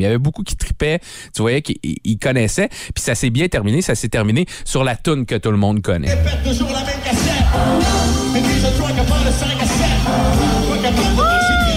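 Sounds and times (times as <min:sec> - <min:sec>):
speech: 0:00.0 - 0:11.2
live concert music: 0:06.1 - 0:11.7
father whooping shout at concert: 0:11.1 - 0:11.7.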